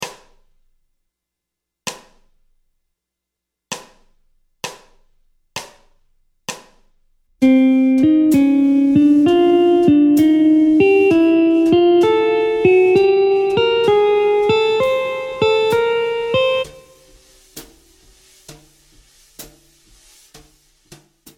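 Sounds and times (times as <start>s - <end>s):
jazz guitar ascending bebop scale in C minor dorian: 7.4s - 17.1s.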